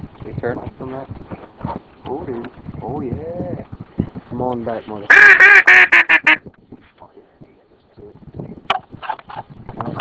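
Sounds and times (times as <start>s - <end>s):
speech: 0.4s - 3.8s, 4.4s - 6.0s
large ducks quacking: 5.1s - 6.4s.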